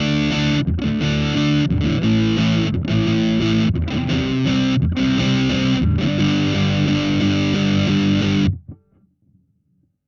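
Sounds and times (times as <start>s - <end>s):
bass guitar through fuzz pedal and cabinet simulator: 0.0s - 9.0s.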